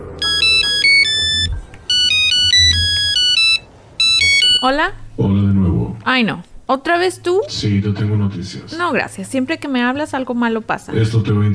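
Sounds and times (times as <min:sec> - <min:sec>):
loud electronic ringtone for an incoming phone call: 0:00.0 - 0:04.8
speech: 0:04.6 - 0:11.5.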